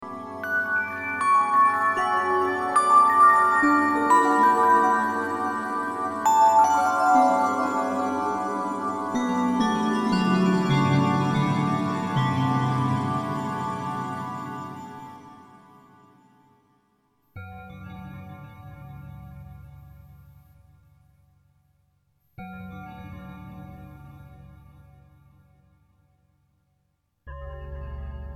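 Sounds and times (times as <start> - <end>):
bell in Exeter: 0.4 - 15.9.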